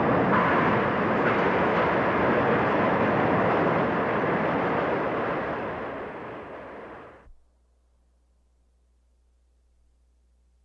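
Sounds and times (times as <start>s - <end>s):
subway train roaring through a station: 0.0s - 7.3s.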